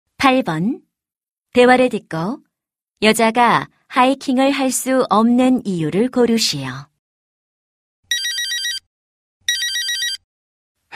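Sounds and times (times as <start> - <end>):
speech: 0.2 - 0.9, 1.5 - 2.4, 3.0 - 6.9
telephone ringing with electronic trills: 8.1 - 8.9, 9.5 - 10.2.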